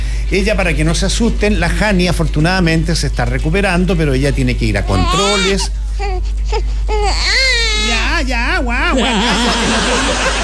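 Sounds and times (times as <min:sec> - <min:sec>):
steady low hum: 0:00.0 - 0:10.4
speech: 0:00.3 - 0:10.4
baby crying: 0:04.8 - 0:09.6
laughter: 0:08.7 - 0:10.4.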